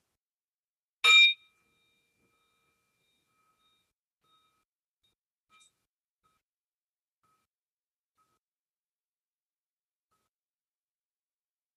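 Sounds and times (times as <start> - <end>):
bright metallic bell struck: 1.0 - 4.6.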